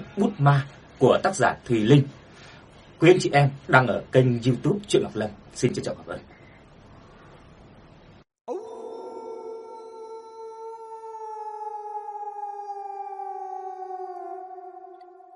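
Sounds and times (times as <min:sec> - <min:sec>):
speech: 0:00.2 - 0:02.2, 0:03.0 - 0:06.3
wolf howling: 0:08.5 - 0:15.3.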